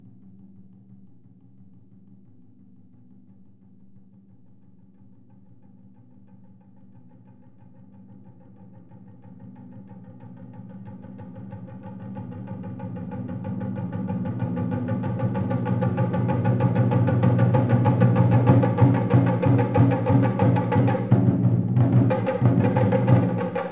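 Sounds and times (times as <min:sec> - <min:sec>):
drumming: 0:12.7 - 0:23.7.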